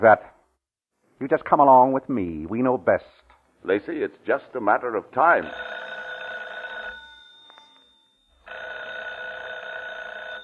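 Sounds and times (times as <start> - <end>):
speech: 0.0 - 0.3, 1.2 - 5.9
telephone bell ringing: 5.4 - 10.4.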